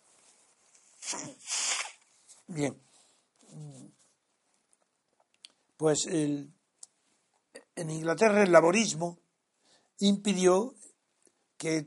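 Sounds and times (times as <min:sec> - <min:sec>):
stifled sneeze: 0:01.0 - 0:02.0
speech: 0:01.1 - 0:01.6, 0:02.5 - 0:02.9, 0:05.8 - 0:06.6, 0:07.8 - 0:09.2, 0:10.0 - 0:10.8, 0:11.6 - 0:11.8.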